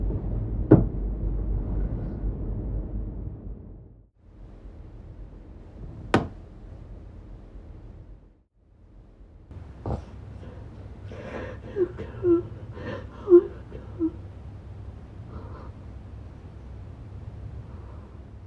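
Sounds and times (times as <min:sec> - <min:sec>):
low room noise: 0:00.0 - 0:18.4
quiet breathing: 0:09.5 - 0:18.4
person whimpering in their sleep during a nightmare: 0:11.1 - 0:14.2.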